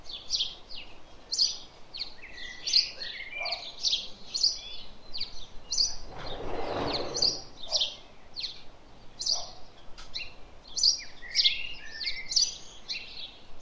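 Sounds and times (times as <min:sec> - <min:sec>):
house sparrows Passer domesticus chirping: 0:00.0 - 0:13.5
broad rushing noise: 0:05.8 - 0:07.6.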